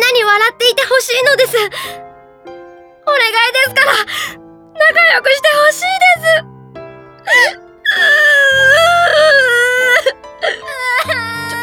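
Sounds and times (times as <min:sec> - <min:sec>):
speech: 0:00.5 - 0:02.0, 0:03.1 - 0:06.5, 0:07.2 - 0:11.3
person crying loudly in long wavering wails: 0:07.3 - 0:11.6.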